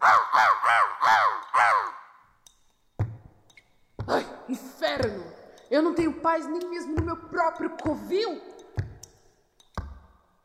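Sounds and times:
crow giving harsh rasping caws: 0.0s - 2.2s
speech: 0.4s - 2.0s, 4.5s - 8.5s.

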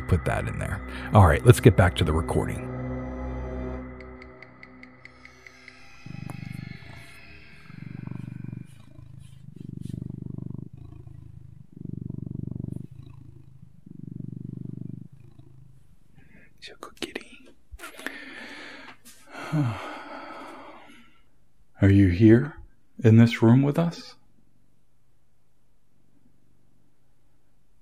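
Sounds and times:
cat purring: 0.0s - 2.7s, 5.9s - 17.4s
speech: 0.1s - 2.7s, 23.0s - 24.2s.

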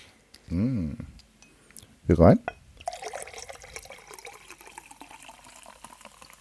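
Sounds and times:
speech: 0.5s - 1.1s, 2.1s - 2.6s
tonic water pouring into a glass, bubbly splashing and fizzing: 2.8s - 6.4s.

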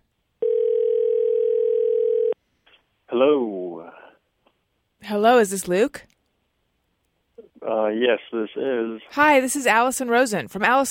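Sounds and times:
telephone dial tone: 0.4s - 2.4s
speech: 5.1s - 6.1s, 7.7s - 10.8s.

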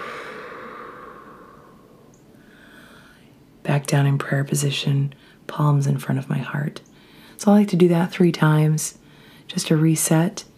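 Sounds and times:
deep breath during a stretching and breathing practice: 0.0s - 3.3s, 7.0s - 7.4s, 9.0s - 9.5s
speech: 3.6s - 10.5s.

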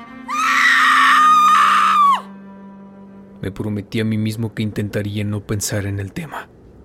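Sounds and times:
woman screaming in pain and panic: 0.2s - 2.3s
speech: 3.4s - 6.6s.

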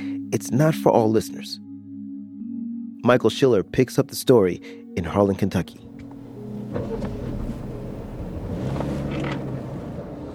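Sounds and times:
speech: 0.3s - 1.7s, 3.0s - 5.8s
car driving along a road through southeastern Kentucky: 5.8s - 10.3s.

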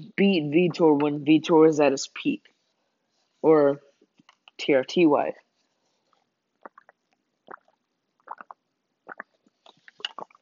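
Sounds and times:
speech: 0.0s - 2.5s, 3.4s - 3.9s, 4.6s - 5.4s
person gulping drinking water: 6.6s - 10.3s.

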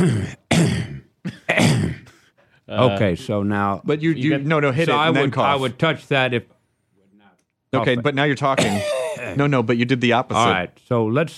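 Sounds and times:
throat clearing: 0.0s - 2.2s, 8.6s - 9.4s
harsh coughing: 0.0s - 2.4s, 8.6s - 9.4s
speech: 2.7s - 6.6s, 7.7s - 11.3s.

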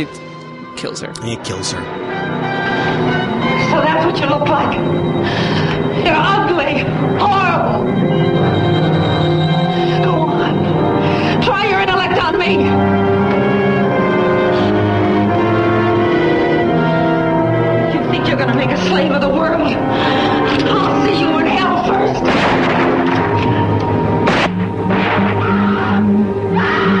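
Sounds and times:
speech: 0.0s - 9.2s, 11.4s - 13.0s, 18.3s - 21.4s
film scene music: 0.0s - 26.9s
pump-action rifle firing repeatedly at a monster: 22.2s - 23.2s.

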